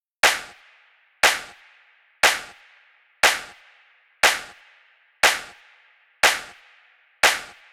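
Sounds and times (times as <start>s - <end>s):
disco claps loop: 0.2s - 0.6s, 1.2s - 1.6s, 2.2s - 2.6s, 3.2s - 3.6s, 4.2s - 4.6s, 5.2s - 5.6s, 6.2s - 6.6s, 7.2s - 7.7s.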